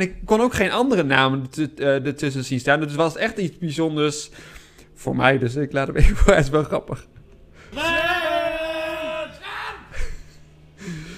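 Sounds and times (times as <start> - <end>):
speech: 0.0 - 8.0
several people loudly yelling a name in unison: 7.7 - 9.9.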